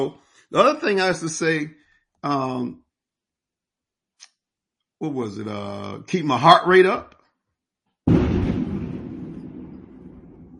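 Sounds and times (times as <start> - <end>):
speech: 0.0 - 2.8, 5.0 - 7.2
thunderclap: 8.1 - 10.5.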